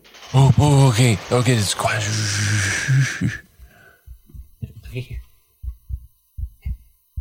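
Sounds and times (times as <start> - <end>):
brief burst of louder noise: 0.0 - 4.0
speech: 0.3 - 3.5, 5.0 - 5.2
deep heartbeat thumps in lub-dub rhythm: 3.4 - 7.1.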